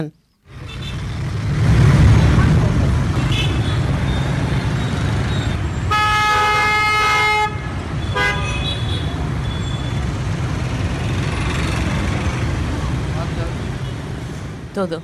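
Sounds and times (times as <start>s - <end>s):
speech: 0.0s - 0.2s, 14.8s - 15.0s
many motorbikes in Hanoi Vietnam: 0.4s - 15.0s
street traffic roar in Hanoi Vietnam: 0.4s - 15.0s
horn blasts in Hanoi street traffic: 5.9s - 8.9s.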